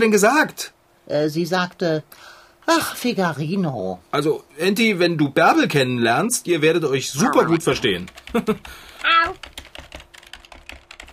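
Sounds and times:
speech: 0:00.0 - 0:09.6
computer keyboard typing an email: 0:07.4 - 0:11.1
laughter: 0:08.3 - 0:08.6.

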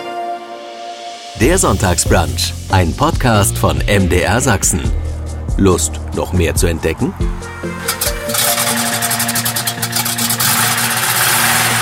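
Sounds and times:
speech: 0:01.4 - 0:05.0, 0:05.6 - 0:08.5
motor running with low rumble and rhythmic rattling: 0:07.8 - 0:11.8.

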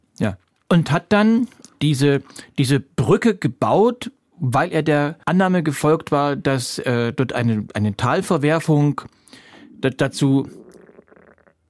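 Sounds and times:
speech: 0:00.2 - 0:10.6
stomach rumbling from a person who has not yet eaten: 0:10.4 - 0:11.6.

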